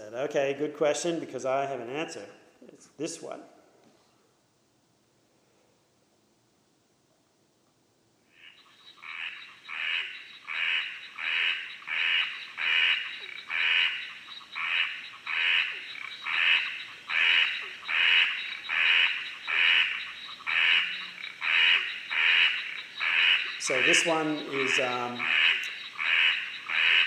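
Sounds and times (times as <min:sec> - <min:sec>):
speech: 0:00.1 - 0:03.5, 0:24.0 - 0:25.4
dunny frog calling with harsh rasping croaks: 0:08.2 - 0:27.0.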